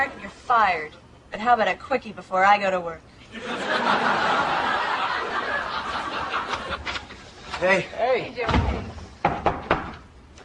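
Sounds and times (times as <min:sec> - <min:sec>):
speech: 0:00.0 - 0:04.4, 0:07.6 - 0:08.9
laughter: 0:03.3 - 0:08.0
sharp knocking on a door: 0:08.5 - 0:10.1.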